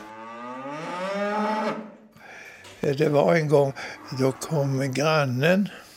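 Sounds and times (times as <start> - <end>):
cow mooing: 0.0 - 2.0, 3.8 - 5.0
speech: 2.8 - 5.8.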